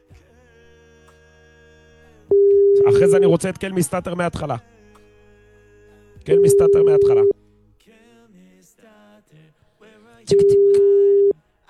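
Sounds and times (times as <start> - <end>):
busy signal on an unanswered telephone call: 2.3 - 3.4, 6.3 - 7.3, 10.3 - 11.3
speech: 2.8 - 4.7, 6.3 - 7.4, 10.2 - 10.8.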